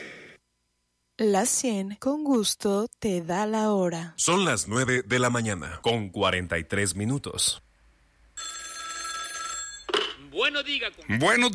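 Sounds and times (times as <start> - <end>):
speech: 1.2 - 7.7, 10.4 - 11.5
telephone bell ringing: 8.4 - 10.2.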